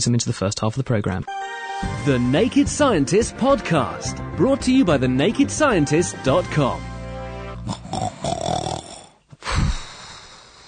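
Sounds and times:
speech: 0:00.0 - 0:06.9
person snoring loudly: 0:07.5 - 0:10.6.

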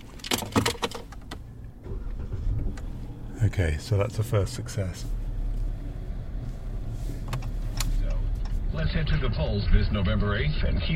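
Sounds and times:
sharp clicks and rattles of a rental car: 0:00.0 - 0:02.9
rental car engine with a steady low rumble: 0:00.0 - 0:10.9
speech: 0:03.4 - 0:05.2, 0:08.8 - 0:10.9.

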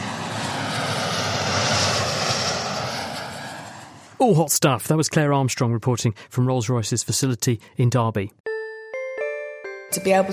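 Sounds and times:
jet engine roaring: 0:00.0 - 0:04.2
speech: 0:04.2 - 0:08.4, 0:09.9 - 0:10.3.

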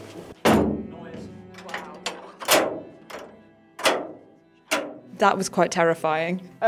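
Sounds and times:
loud metallic clunks and bangs: 0:00.3 - 0:05.2
heavy bunker blast door slamming shut: 0:00.4 - 0:05.1
speech: 0:05.2 - 0:06.6.

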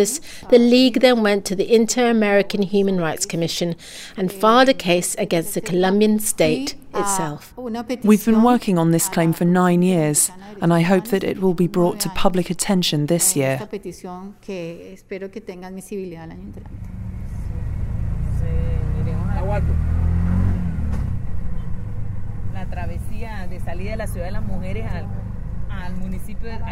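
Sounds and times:
speech: 0:00.0 - 0:17.2, 0:19.4 - 0:19.9, 0:22.6 - 0:26.6
small rickshaw-like motorbike taxi engine revving and idling: 0:16.2 - 0:26.6.

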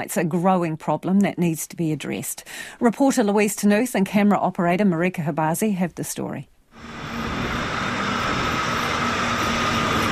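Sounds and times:
speech: 0:00.0 - 0:06.9
broadband noise of a busy bus station: 0:06.8 - 0:10.1
low engine-like hum: 0:06.8 - 0:10.1.

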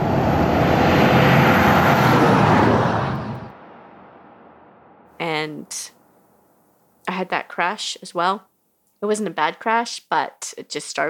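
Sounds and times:
heavy 100-tonne vehicle roaring past on a highway: 0:00.0 - 0:05.0
speech: 0:07.6 - 0:11.0.

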